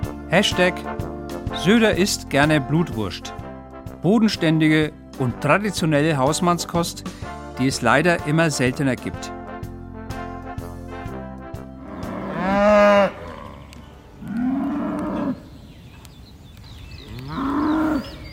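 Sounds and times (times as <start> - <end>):
speech: 0.3 - 3.4, 4.0 - 9.4
cow mooing: 11.8 - 15.5, 17.0 - 18.3
faint bird chirps: 15.1 - 18.3.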